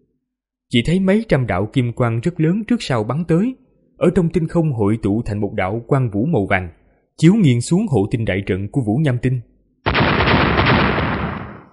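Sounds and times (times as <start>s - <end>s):
speech: 0.7s - 10.1s
loud explosions: 9.9s - 11.7s.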